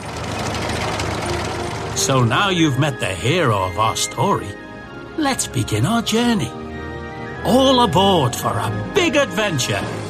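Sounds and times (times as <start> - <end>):
crawler tractor engine chugging with a deep throbbing rumble: 0.0 - 4.6
speech: 2.0 - 4.6, 5.2 - 6.6, 7.4 - 10.0.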